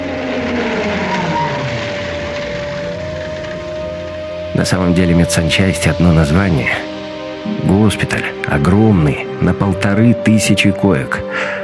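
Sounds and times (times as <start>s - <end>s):
truck tires squealing while turning sharply: 0.0s - 5.2s
truck engine roaring: 0.0s - 8.5s
speech: 4.6s - 6.9s, 7.7s - 11.6s.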